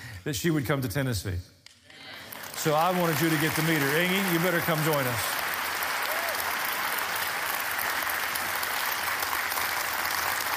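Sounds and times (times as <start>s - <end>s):
speech: 0.2s - 1.6s, 2.6s - 5.3s
audience applause: 2.0s - 10.5s.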